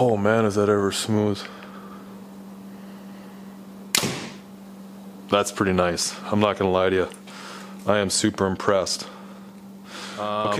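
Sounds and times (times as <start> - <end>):
speech: 0.0 - 1.7, 5.3 - 7.2, 7.8 - 9.2, 10.2 - 10.5
steady low hum: 0.0 - 7.8
arrow shot from a compound bow: 3.9 - 4.5.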